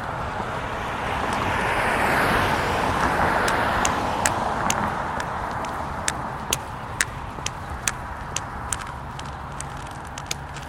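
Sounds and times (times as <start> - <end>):
whoosh of passing traffic at a road crossing: 0.0 - 10.6
sharp clicking taps: 3.0 - 10.6.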